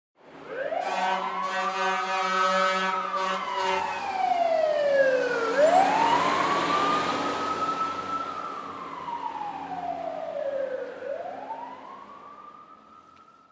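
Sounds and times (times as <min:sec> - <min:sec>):
fire siren: 0:00.2 - 0:13.5
air horn of a fire siren: 0:00.8 - 0:04.0.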